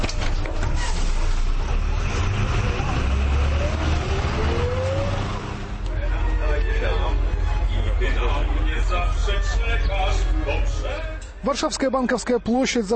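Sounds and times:
modern city bus engine rumbling while moving: 0.0s - 11.7s
city bus engine whine accelerating: 0.4s - 10.9s
speech: 11.5s - 12.9s.

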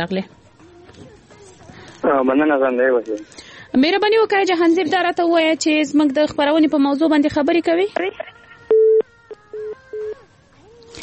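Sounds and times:
speech: 0.0s - 1.2s, 2.0s - 8.2s
telephone busy signal after a dropped call: 8.7s - 9.0s.

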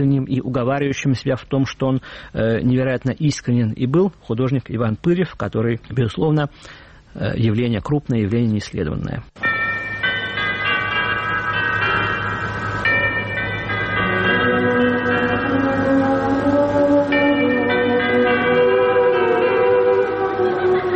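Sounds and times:
speech: 0.0s - 9.5s
clock tower chimes ringing in a layered resonant peal: 9.4s - 20.9s.

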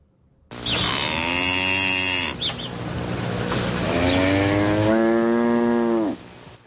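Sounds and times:
cow mooing while grazing in a meadow: 0.5s - 2.5s, 3.8s - 6.3s.

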